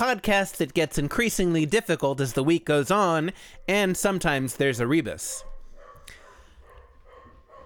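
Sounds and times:
speech: 0.0 - 5.5
dog barks: 3.4 - 3.9, 5.3 - 7.6.

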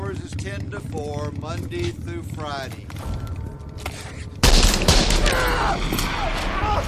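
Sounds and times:
speech: 0.5 - 3.2, 5.6 - 6.8
gunshot in a film scene: 4.5 - 6.6.

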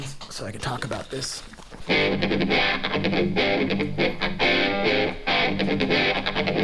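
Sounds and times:
speech: 0.4 - 6.6
distorted electric guitar chords with envelope-controlled wah-wah effect through a modular setup: 1.8 - 6.6.

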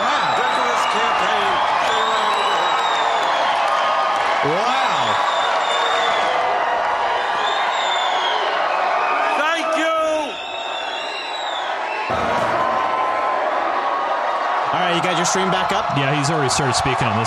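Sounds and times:
high whistles from crowd: 0.0 - 3.9, 4.8 - 6.5, 7.2 - 12.2
large crowd cheering: 0.0 - 17.2
speech: 15.2 - 17.2.

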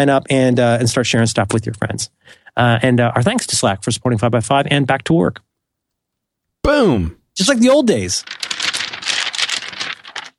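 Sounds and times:
speech: 0.0 - 5.5, 6.6 - 9.2
business papers being shuffled and handled: 8.0 - 10.3.

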